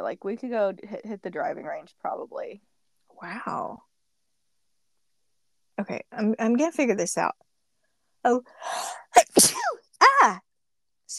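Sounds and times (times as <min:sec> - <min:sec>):
speech: 0:00.0 - 0:03.9, 0:05.8 - 0:07.5, 0:08.2 - 0:10.5
person sneezing: 0:08.8 - 0:09.8.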